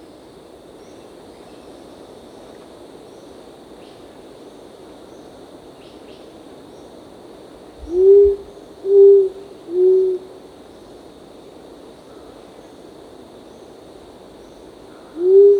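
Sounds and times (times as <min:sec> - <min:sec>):
faint steady high hum: 0:00.0 - 0:15.5
short-toed coucal giving deep mellow hoots: 0:07.8 - 0:10.3, 0:15.1 - 0:15.5.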